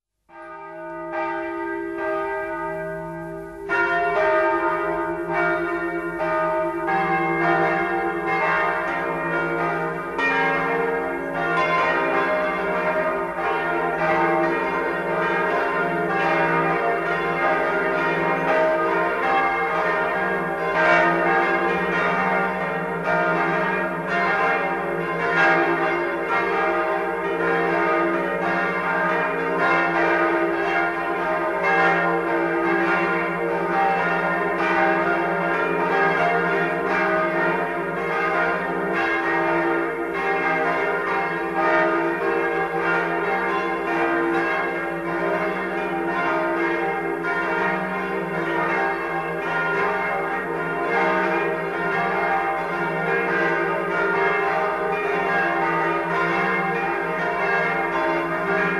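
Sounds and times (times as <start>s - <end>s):
bells ringing in Hartkirchen am Inn: 0.3s - 58.7s.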